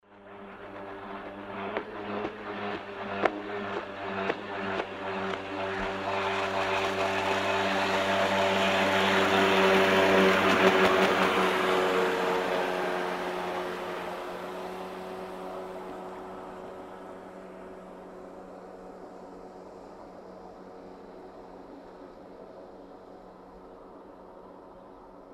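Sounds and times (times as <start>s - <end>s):
jet ski passing by: 0.1s - 25.2s.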